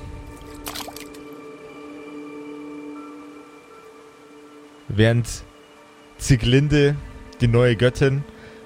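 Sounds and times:
water drips from a pond: 0:00.3 - 0:01.4
hand dipping into small pond water with a squishy splash: 0:00.4 - 0:01.2
speech: 0:04.9 - 0:05.5, 0:06.2 - 0:08.4.

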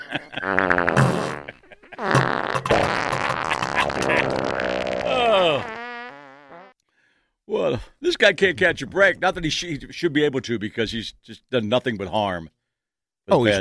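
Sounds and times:
speech: 0:00.1 - 0:00.8, 0:08.2 - 0:12.6, 0:13.3 - 0:13.6
loud wet sputtering farts: 0:00.4 - 0:06.8.

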